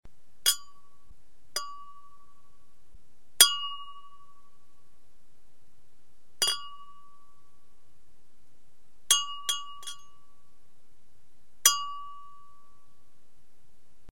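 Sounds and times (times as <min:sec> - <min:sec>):
wine glasses clinking: 0:00.5 - 0:00.8, 0:01.6 - 0:02.0, 0:06.4 - 0:06.9, 0:09.1 - 0:10.1, 0:11.7 - 0:12.2.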